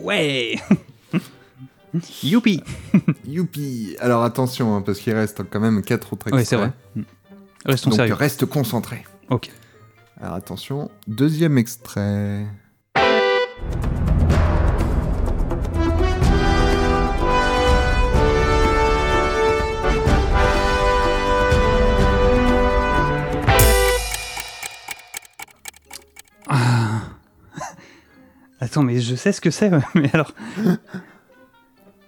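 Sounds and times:
speech: 0:00.0 - 0:01.3, 0:02.0 - 0:09.6, 0:10.2 - 0:12.6, 0:28.6 - 0:31.1
laughter: 0:00.5 - 0:03.3
loud sweeping orchestral video game main theme with brass-like chords: 0:13.0 - 0:14.1, 0:15.2 - 0:26.6.

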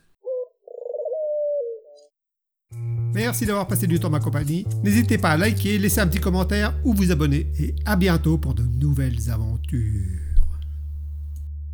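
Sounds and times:
pigeon cooing: 0:00.0 - 0:02.1
speech: 0:03.1 - 0:10.3.

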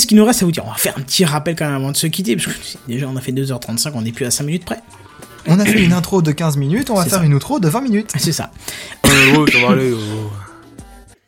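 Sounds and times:
speech: 0:00.0 - 0:10.4
person choking and coughing close to a microphone: 0:05.5 - 0:06.1, 0:09.0 - 0:10.3.

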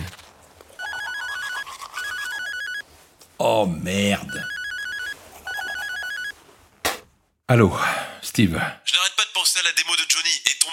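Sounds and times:
mobile phone ringtone with warbling electronic melody: 0:00.8 - 0:02.8, 0:04.3 - 0:06.4
speech: 0:03.4 - 0:04.5, 0:07.5 - 0:10.7.

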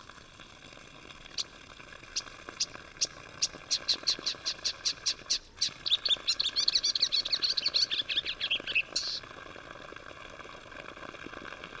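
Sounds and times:
Acrocephalus palustris marsh warblers singing in the Vercors: 0:01.3 - 0:09.3.

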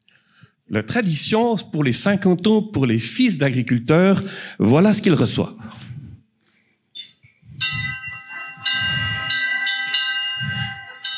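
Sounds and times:
speech: 0:00.7 - 0:05.8
large engraved bell clanging: 0:07.6 - 0:11.1.

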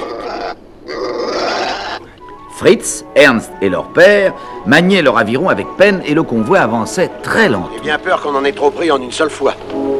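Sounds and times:
pig paddling in calm Pacific water grunting: 0:00.0 - 0:02.1
speech: 0:02.6 - 0:09.8.

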